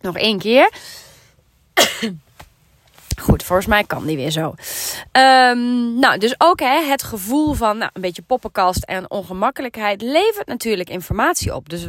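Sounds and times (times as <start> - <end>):
speech: 0.0 - 1.0, 1.8 - 2.3, 3.2 - 11.8
person coughing: 1.8 - 2.2
throat clearing: 1.8 - 2.2.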